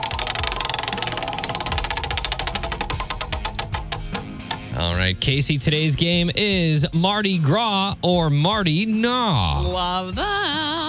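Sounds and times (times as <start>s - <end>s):
prize wheel spinning with ratcheting clicks: 0.0s - 4.8s
speech: 5.0s - 10.8s.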